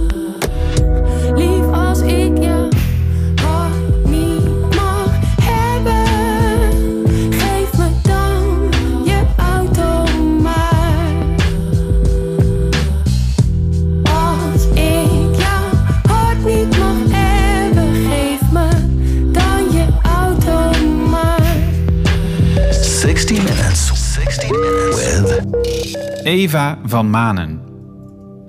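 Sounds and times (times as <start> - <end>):
melodic vocal line: 0.0 - 2.8, 3.4 - 13.0, 14.0 - 27.6
pop song with full band groove: 0.0 - 26.6
driving bass line: 2.8 - 26.4
speech: 26.5 - 27.6.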